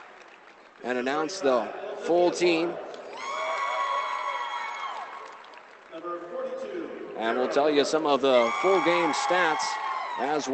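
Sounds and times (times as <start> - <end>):
speech: 0.8 - 2.8, 6.0 - 10.5
high-pitched screams and shouts from the crowd: 3.1 - 5.4, 8.2 - 10.5
large crowd cheering wildly at a medal ceremony: 3.1 - 5.4, 8.2 - 10.5.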